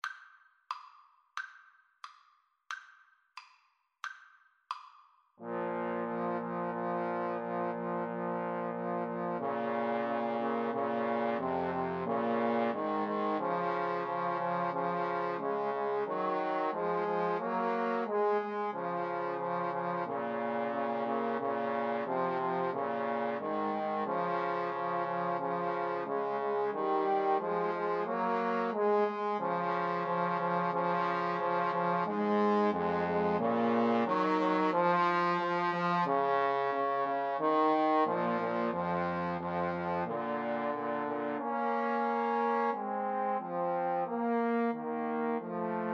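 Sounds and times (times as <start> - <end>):
trombone trio playing a pavane: 5.4 - 34.9, 35.6 - 45.9.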